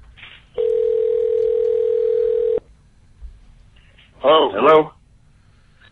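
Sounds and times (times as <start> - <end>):
telephone line tone while placing a call: 0.6 - 2.6
speech: 4.3 - 4.9.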